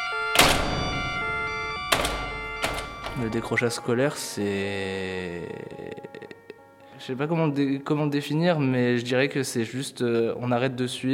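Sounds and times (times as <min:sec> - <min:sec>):
door shutting with a thunk: 0:00.4 - 0:03.4
speech: 0:03.2 - 0:06.4, 0:07.0 - 0:11.1.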